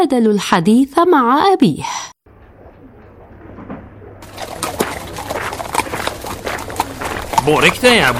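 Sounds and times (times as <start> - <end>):
speech: 0.0 - 2.2, 7.4 - 8.1
low outdoor hum: 2.3 - 8.1
small donkey's hooves clip-clopping while walking: 4.2 - 8.1.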